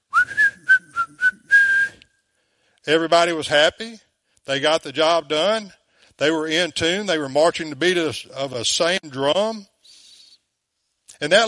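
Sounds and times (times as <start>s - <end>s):
person whistling a short bright tune: 0.1s - 2.1s
speech: 2.9s - 9.7s, 11.2s - 11.4s.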